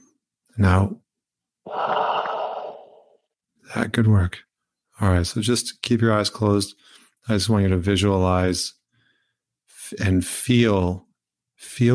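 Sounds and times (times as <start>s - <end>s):
speech: 0.6s - 1.0s, 3.7s - 8.8s, 9.9s - 11.9s
deep breath in during a guided relaxation exercise: 1.7s - 3.2s.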